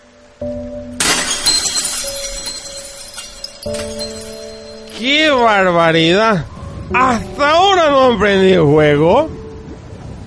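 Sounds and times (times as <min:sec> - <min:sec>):
steady tonal sound: 0:00.0 - 0:10.2
speech: 0:00.4 - 0:00.7, 0:03.6 - 0:03.9, 0:05.0 - 0:09.4
breaking glass shimmer: 0:01.0 - 0:05.3
empty glass bottle thrown into a ravine and shattering: 0:01.0 - 0:05.5.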